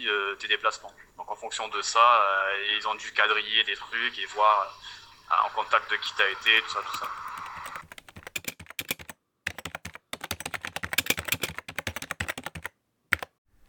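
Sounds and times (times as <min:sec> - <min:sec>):
speech: 0:00.0 - 0:07.3
rapid typing on a computer keyboard: 0:06.9 - 0:13.4.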